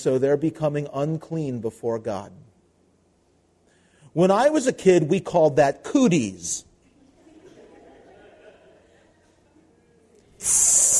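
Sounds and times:
speech: 0.0s - 2.5s, 4.2s - 6.7s, 10.4s - 10.8s
laughter: 6.9s - 10.0s
voice imitating aerosol spray can hiss: 10.4s - 10.9s.

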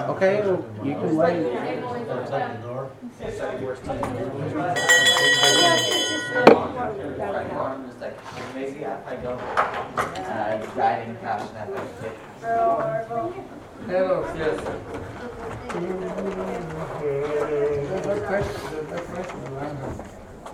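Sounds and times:
steady murmur of people talking in a room: 0.0s - 20.5s
speech: 0.1s - 20.2s
bell ringing with bright shimmering tone: 4.8s - 6.8s.

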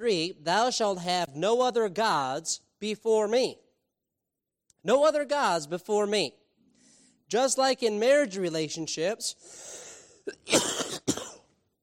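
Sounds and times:
speech: 0.0s - 3.6s, 4.8s - 6.4s, 7.3s - 10.7s
person coughing and clearing the throat: 10.2s - 11.6s.

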